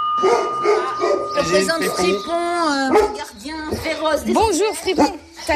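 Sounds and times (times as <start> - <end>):
dog barking: 0.2 - 2.2, 2.8 - 3.9, 4.9 - 5.2
speech: 1.6 - 5.5.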